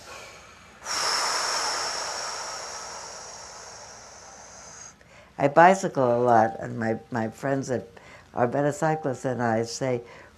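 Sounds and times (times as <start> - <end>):
deep breath drawn in and slowly let out: 0.0 - 5.4, 10.0 - 10.3
speech: 5.4 - 10.3.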